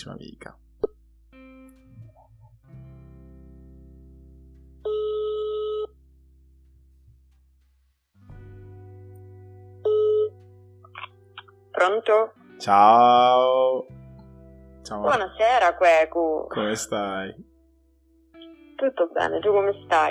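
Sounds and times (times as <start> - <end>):
speech: 0.0 - 0.7, 11.8 - 14.0, 14.8 - 17.5, 18.8 - 20.0
phone ringing tone of a call being placed: 4.9 - 5.9, 9.9 - 10.3.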